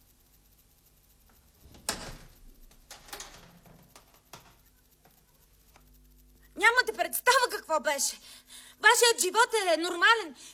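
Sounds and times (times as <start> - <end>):
door opening with a click and rattle: 1.6 - 4.7
speech: 6.6 - 10.5.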